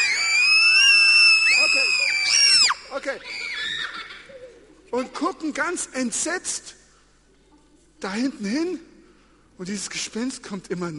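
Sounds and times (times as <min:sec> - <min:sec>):
group of voices screaming together on cue: 0:00.0 - 0:04.2
speech: 0:03.0 - 0:03.5, 0:04.9 - 0:06.8, 0:08.0 - 0:08.9, 0:09.6 - 0:10.9.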